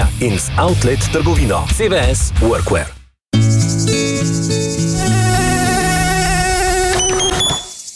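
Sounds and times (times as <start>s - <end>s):
speech: 0.2s - 3.6s
mosquito buzzing: 3.5s - 7.9s.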